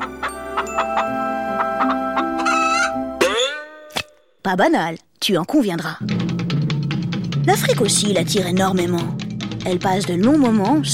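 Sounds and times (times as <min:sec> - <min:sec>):
hen clucking in a henhouse: 0:00.0 - 0:03.8
speech: 0:04.5 - 0:06.2, 0:07.4 - 0:10.9.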